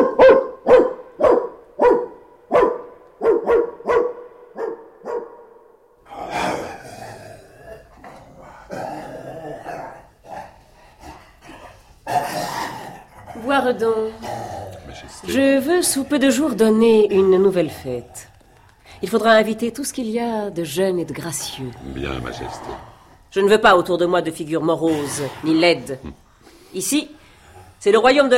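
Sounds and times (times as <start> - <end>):
dog barking: 0.0 - 5.6
speech: 13.7 - 14.3, 15.2 - 18.2, 19.0 - 27.2, 27.8 - 28.3.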